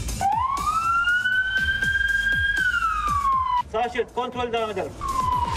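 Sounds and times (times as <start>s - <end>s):
ambulance siren wailing on a narrow street: 0.2s - 3.6s, 5.0s - 5.5s.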